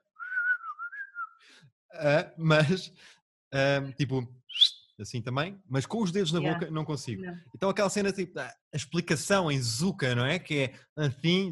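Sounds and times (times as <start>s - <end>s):
person whistling with the lips: 0.0s - 1.6s, 4.5s - 4.8s
speech: 1.6s - 4.4s, 5.0s - 11.5s.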